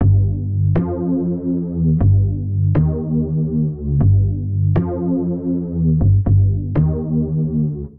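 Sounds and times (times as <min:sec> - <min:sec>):
driving bass line in G major at 120 bpm: 0:00.0 - 0:07.9.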